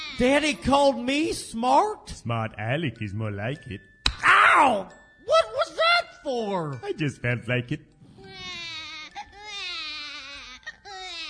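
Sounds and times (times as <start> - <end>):
colicky four-month-old baby crying in long high wails: 0.0 - 0.6, 8.1 - 11.2
speech: 0.2 - 3.9, 4.6 - 5.5, 6.2 - 7.9.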